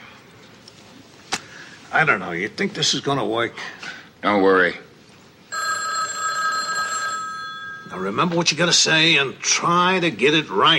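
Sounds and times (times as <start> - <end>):
speech: 1.9 - 4.8, 8.0 - 10.7
telephone ringing with a bright steady tone: 5.5 - 8.3.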